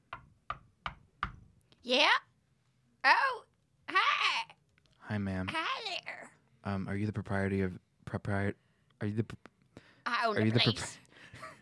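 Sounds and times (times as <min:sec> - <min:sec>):
knocking on the front door of a farmhouse: 0:00.1 - 0:01.4
speech: 0:01.8 - 0:02.3, 0:03.0 - 0:03.5, 0:05.1 - 0:09.5, 0:10.2 - 0:11.0
person calling out from inside: 0:03.0 - 0:04.6.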